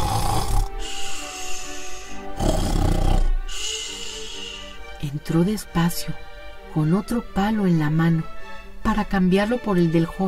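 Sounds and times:
young man snoring while asleep at an inn: 0:00.0 - 0:04.8
speech: 0:05.1 - 0:10.2.

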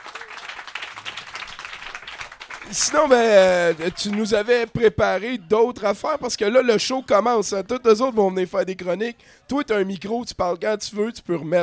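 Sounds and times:
audience applause at a live show: 0:00.0 - 0:04.6
speech: 0:02.7 - 0:11.6.

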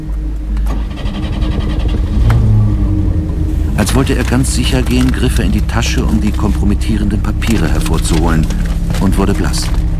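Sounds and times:
red Renault Frégate car engine running and revving at the curb: 0:00.0 - 0:09.9
speech: 0:04.0 - 0:09.8.

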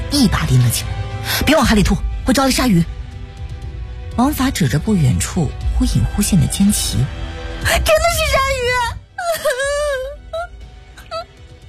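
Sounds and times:
speech: 0:00.1 - 0:03.0, 0:04.2 - 0:09.7
girl crying loudly on a raft at sea: 0:09.2 - 0:11.3.

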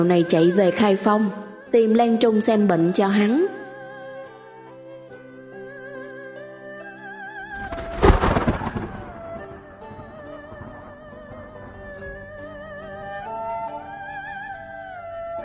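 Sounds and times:
speech: 0:00.0 - 0:03.6
heavy rain pouring onto the ground: 0:07.6 - 0:09.5
loud rolling thunderclap: 0:07.6 - 0:10.3.

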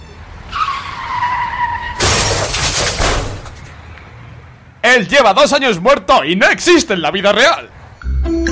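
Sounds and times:
car skidding with tire screech: 0:00.0 - 0:03.9
car crashing: 0:00.6 - 0:03.8
glass shattering: 0:02.0 - 0:03.6
speech: 0:04.8 - 0:08.4.

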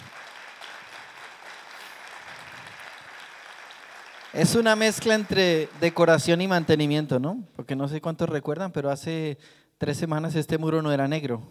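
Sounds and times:
audience applause at a church service: 0:00.0 - 0:07.2
speech: 0:04.3 - 0:11.4.

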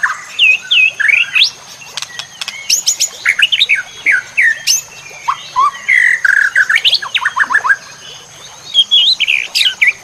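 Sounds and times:
White-rumped shama song: 0:00.0 - 0:10.0.

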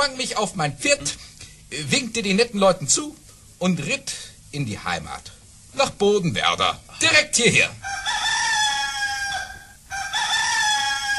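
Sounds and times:
speech: 0:00.1 - 0:08.0
rooster crowing at dawn: 0:07.8 - 0:11.1.

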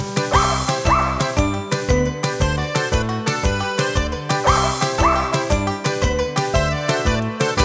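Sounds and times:
bouncy children's song: 0:00.0 - 0:07.6
dog barking in tune and in time to a bouncy children's song: 0:00.3 - 0:01.6, 0:04.4 - 0:05.6.

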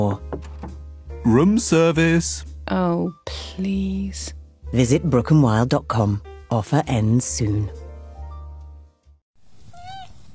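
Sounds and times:
speech: 0:01.2 - 0:07.8
kitten meowing: 0:09.7 - 0:10.2.

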